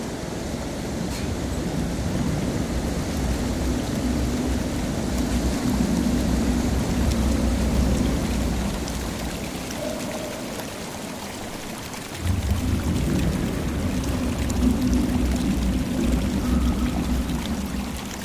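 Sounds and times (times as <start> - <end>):
Marzyangdi mountain river rushing: 0.0 - 18.2.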